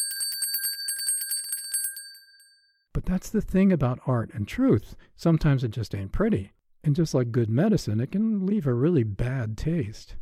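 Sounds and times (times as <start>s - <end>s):
bright metallic bell ringing rapidly: 0.0s - 2.7s
speech: 3.0s - 10.2s.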